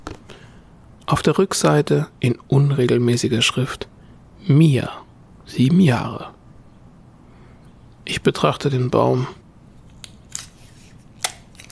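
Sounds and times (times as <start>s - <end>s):
speech: 1.1s - 6.4s, 8.1s - 9.4s
piece of adhesive tape torn off: 10.0s - 11.7s.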